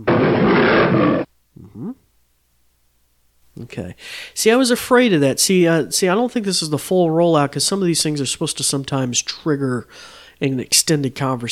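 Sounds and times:
lion roaring: 0.0s - 1.3s
speech: 3.6s - 11.5s.

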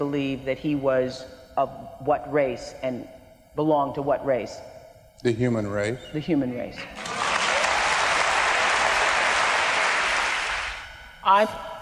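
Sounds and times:
speech: 0.0s - 7.1s, 11.2s - 11.7s
audience applause: 7.0s - 10.8s.

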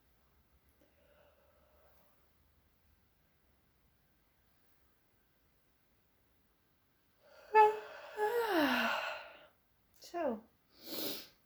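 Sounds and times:
long deep yawn with a voiced downward-sliding groan: 7.6s - 9.2s.

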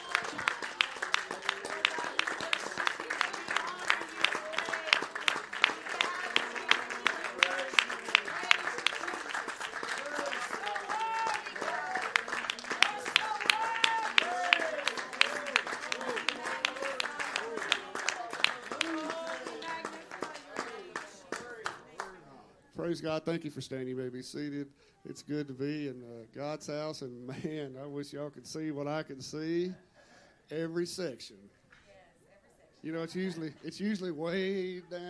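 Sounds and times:
church congregation clapping hands in praise: 0.0s - 22.2s
speech: 22.9s - 29.9s, 30.5s - 31.4s, 32.8s - 35.0s.

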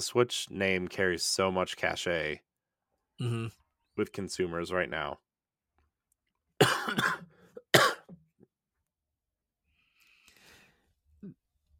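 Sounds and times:
speech: 0.0s - 2.5s, 3.2s - 5.2s
harsh coughing fit: 6.6s - 8.2s.

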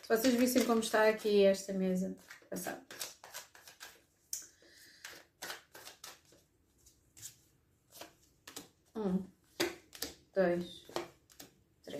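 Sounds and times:
tarot cards being shuffled: 0.0s - 1.2s, 2.2s - 8.9s, 9.5s - 10.2s, 10.8s - 11.9s
speech: 0.0s - 3.1s, 9.0s - 9.4s, 10.4s - 10.8s
tarot cards laid down on a table: 2.2s - 11.9s.

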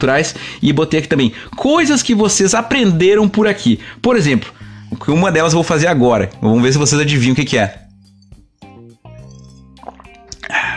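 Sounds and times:
speech: 0.0s - 7.8s
sipping water: 7.5s - 10.7s
wet mouth sounds: 7.8s - 10.7s
swallowing gulps of water: 9.2s - 10.7s.

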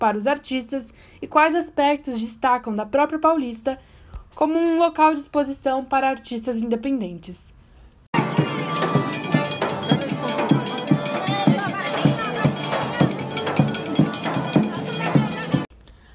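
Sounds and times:
speech: 0.0s - 7.6s
crowd murmuring: 8.2s - 15.7s
lively forró music played live outdoors on a busy street: 8.2s - 15.7s.

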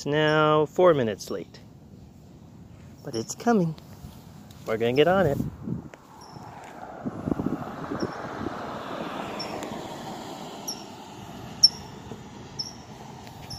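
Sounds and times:
speech: 0.0s - 1.7s, 3.0s - 3.9s, 4.7s - 5.6s
steady low rumble of traffic outdoors: 0.0s - 13.5s
thin high-pitched bird chirps outdoors: 6.1s - 6.6s, 11.6s - 12.0s, 12.6s - 13.5s.

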